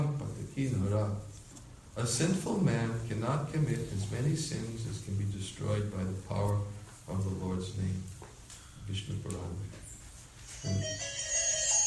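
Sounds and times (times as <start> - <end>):
speech: 0.6 - 1.4, 2.0 - 8.2, 8.9 - 9.8, 10.6 - 11.2
mobile phone ringtone in a temple: 10.6 - 11.8.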